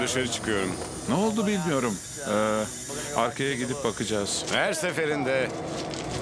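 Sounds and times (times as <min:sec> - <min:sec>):
air hissing from a ruptured air hose on a stopped train car: 0:00.0 - 0:04.6
speech: 0:00.0 - 0:06.1.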